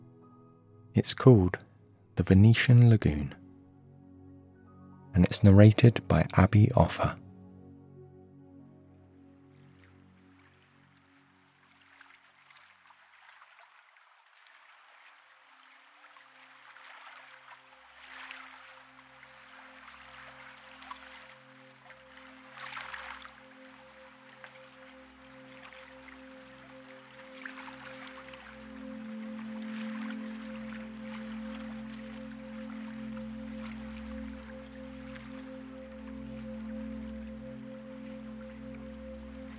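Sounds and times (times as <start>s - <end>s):
speech: 1.0s - 3.4s, 5.2s - 7.2s
water lapping against stone wall: 11.7s - 35.5s.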